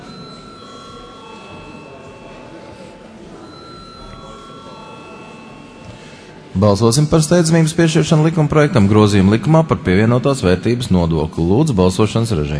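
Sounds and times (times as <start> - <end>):
electric bell ringing for a parliamentary vote: 0.0 - 8.0
murmuring voices: 0.0 - 11.6
speech: 6.6 - 12.5.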